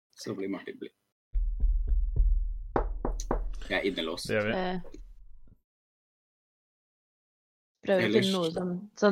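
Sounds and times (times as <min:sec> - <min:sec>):
speech: 0:00.2 - 0:01.0, 0:03.7 - 0:05.0, 0:07.8 - 0:09.1
dull knocking on a wooden table: 0:01.8 - 0:03.6.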